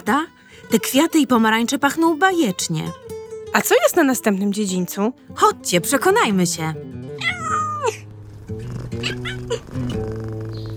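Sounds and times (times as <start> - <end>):
speech: 0.0 - 7.5
kittens meowing: 7.2 - 8.0.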